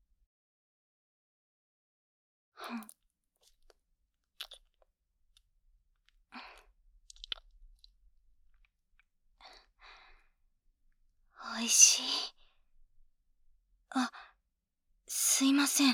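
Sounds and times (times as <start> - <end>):
speech: 2.6 - 3.0, 11.7 - 12.4, 14.0 - 14.2, 15.4 - 15.9
hard candy crunched in the mouth: 2.8 - 5.4, 6.0 - 8.7.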